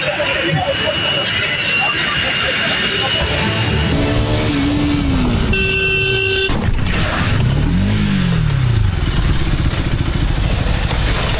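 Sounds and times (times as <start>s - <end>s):
laughter: 0.0s - 4.5s
steady road and wind noise: 0.0s - 11.3s
motorcycle engine rising and falling: 3.0s - 11.3s
brief horn-like tone: 3.2s - 6.6s.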